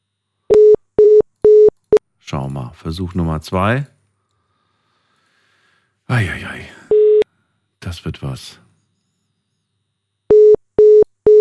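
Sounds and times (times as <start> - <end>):
telephone line tone beeping in short pulses: 0.5 - 1.7, 6.9 - 7.2, 10.3 - 11.3
speech: 2.3 - 4.0, 6.1 - 6.8, 8.0 - 8.6.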